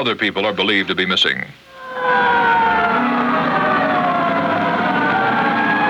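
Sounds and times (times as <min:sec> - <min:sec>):
speech: 0:00.0 - 0:02.5
low traffic rumble: 0:00.0 - 0:05.8
fire engine siren wailing: 0:01.7 - 0:05.8.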